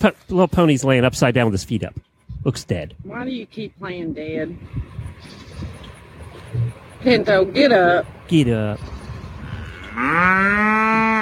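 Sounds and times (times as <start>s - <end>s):
speech: 0.0s - 5.7s, 6.5s - 9.0s, 10.0s - 11.2s
cow mooing: 9.3s - 11.2s.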